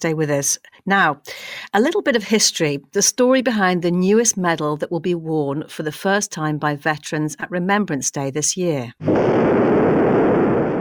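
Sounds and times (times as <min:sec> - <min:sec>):
speech: 0:00.0 - 0:09.8
hydrogen bomb test explosion roar: 0:09.0 - 0:10.7.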